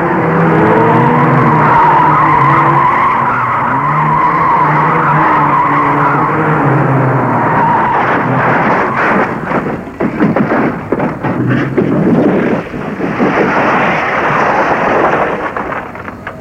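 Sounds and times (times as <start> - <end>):
car engine roaring rumble: 0.0 - 16.3
car crashing off the road into a ditch and tree: 7.9 - 16.3
car window breaking: 8.0 - 16.3.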